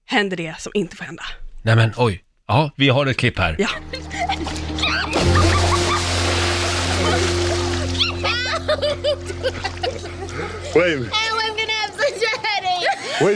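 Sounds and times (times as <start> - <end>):
speech: 0.1 - 4.6, 9.0 - 11.3
people laughing: 3.6 - 6.2, 6.9 - 10.8, 11.9 - 13.3
water sloshing: 3.8 - 12.4
splash of water as a person is thrown into the sea: 4.4 - 8.6.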